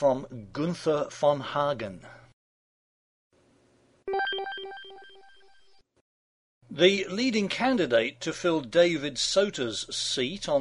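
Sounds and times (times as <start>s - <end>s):
speech: 0.0s - 2.2s, 6.7s - 10.6s
phone ringtone of short electronic tones: 4.1s - 5.7s.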